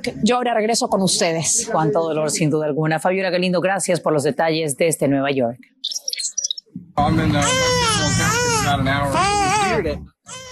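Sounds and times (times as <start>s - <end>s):
speech: 0.0s - 6.0s, 7.0s - 10.4s
three-month-old baby crying: 7.4s - 10.5s.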